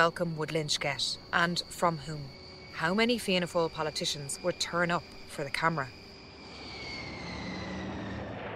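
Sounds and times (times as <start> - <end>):
speech: 0.0 - 6.0
high jet engine whine: 0.0 - 8.5
jet plane engine roaring while taxiing on airport tarmac: 6.4 - 8.5.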